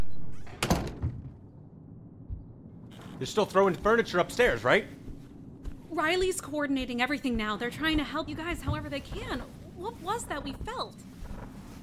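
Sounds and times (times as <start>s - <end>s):
door swinging shut with a solid thump: 0.4s - 1.4s
speech: 3.2s - 5.0s, 6.0s - 11.1s.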